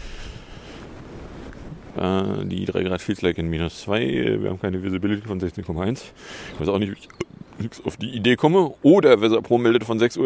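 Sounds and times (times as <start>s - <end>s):
steady wind roaring and buffeting across the microphone: 0.0s - 5.8s
speech: 2.0s - 10.2s.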